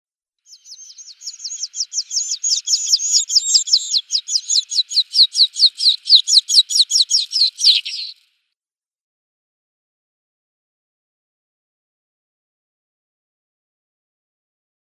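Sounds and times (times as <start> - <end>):
Alpine Accentor nestlings calling: 0.5 - 8.2.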